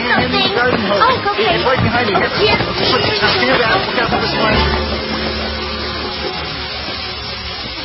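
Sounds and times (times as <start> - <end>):
continuous hissing and sizzling: 0.0 - 7.8
speech: 0.9 - 5.0
low rumbling hum: 3.3 - 7.8.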